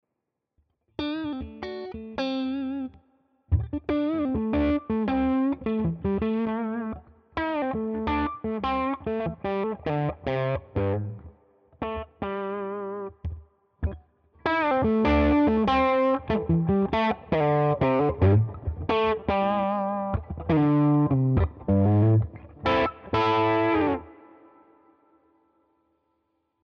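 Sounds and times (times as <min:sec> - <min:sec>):
instrumental licks with low gain cutoff: 0:01.0 - 0:11.2, 0:11.8 - 0:24.4.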